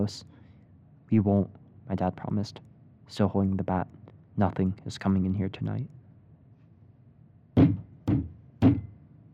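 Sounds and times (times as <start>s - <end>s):
speech: 0.0s - 0.3s, 1.1s - 6.0s
loud heavy knocking on a door: 7.6s - 8.9s.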